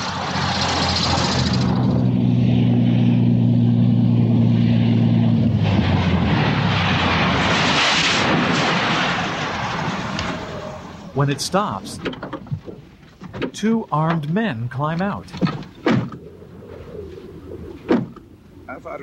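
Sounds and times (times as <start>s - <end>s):
propeller plane rushing roar while landing on desert sand: 0.0s - 11.9s
propeller plane engine drone while landing on desert sand: 0.0s - 19.0s
speech: 11.2s - 12.2s, 13.6s - 15.6s.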